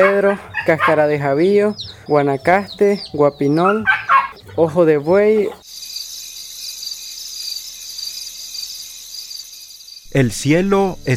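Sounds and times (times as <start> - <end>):
speech: 0.0 - 4.0, 4.6 - 5.6, 10.1 - 11.1
chorus of crickets chirping at night: 5.6 - 11.1.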